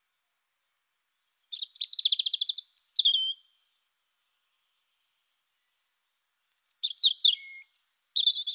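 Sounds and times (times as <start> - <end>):
European robin singing: 1.5 - 3.5, 6.5 - 8.5.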